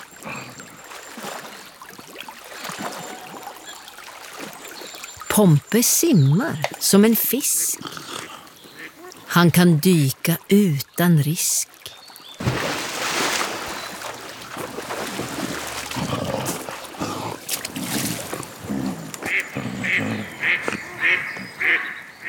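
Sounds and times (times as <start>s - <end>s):
rough splashy noise: 0.0s - 5.3s, 11.7s - 21.2s
speech: 5.4s - 8.0s, 9.4s - 11.8s
duck quacking: 19.3s - 22.2s.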